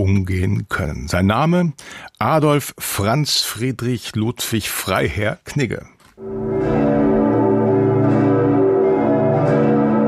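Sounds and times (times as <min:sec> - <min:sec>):
speech: 0:00.0 - 0:06.6
large cathedral church bells pealing: 0:06.2 - 0:10.0.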